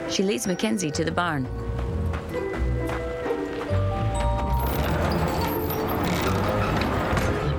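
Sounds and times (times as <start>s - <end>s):
speech: 0.1s - 1.6s
horse-like hoofbeats clopping: 1.1s - 7.4s.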